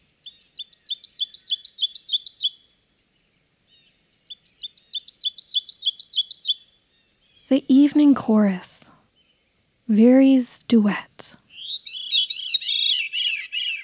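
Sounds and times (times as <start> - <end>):
ovenbird singing: 0.1 - 2.6, 4.2 - 6.7, 11.5 - 13.8
speech: 7.5 - 8.7, 9.9 - 11.1.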